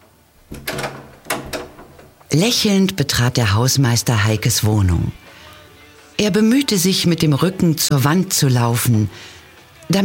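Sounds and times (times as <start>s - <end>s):
apartment door chain rattling as it is removed: 0.4s - 2.2s
speech: 2.3s - 5.3s, 6.2s - 10.0s.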